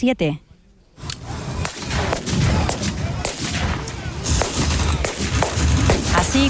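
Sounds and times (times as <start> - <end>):
speech: 0.0 - 0.4, 6.2 - 6.4
gunshots in a historical battle reenactment in Brunete Spain: 1.2 - 6.4
rumbling explosions and battlefield noise in a battle reenactment: 1.2 - 6.4.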